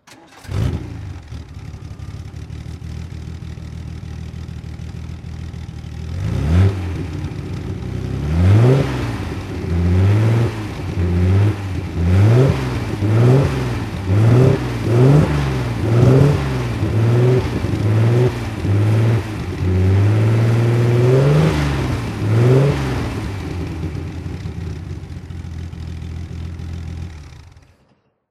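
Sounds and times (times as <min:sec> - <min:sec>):
Healey 3000 MkI race car engine revving under throttle: 0:06.1 - 0:24.5.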